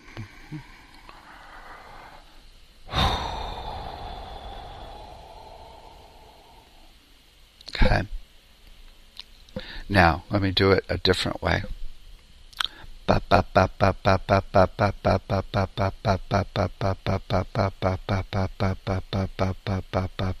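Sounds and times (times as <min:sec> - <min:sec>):
slow long airy breath exhale: 0:00.0 - 0:07.2, 0:09.6 - 0:09.9
short forceful breath: 0:02.9 - 0:07.0
speech: 0:09.9 - 0:11.8, 0:13.2 - 0:20.3.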